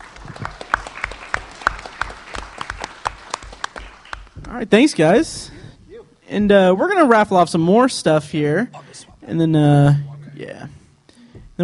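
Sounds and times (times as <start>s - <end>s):
crowd applauding: 0.0s - 4.6s
speech: 4.5s - 5.6s, 6.3s - 10.1s.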